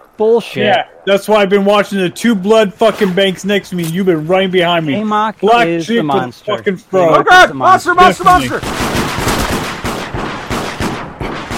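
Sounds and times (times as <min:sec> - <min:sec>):
speech: 0:00.2 - 0:09.0
gunfire in a multiplayer video game: 0:08.4 - 0:11.5.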